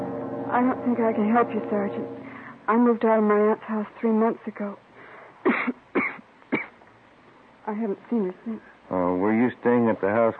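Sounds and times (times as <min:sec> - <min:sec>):
speech: 0:00.5 - 0:04.8, 0:07.7 - 0:10.3
young woman with a bad cough coughing: 0:05.4 - 0:06.8.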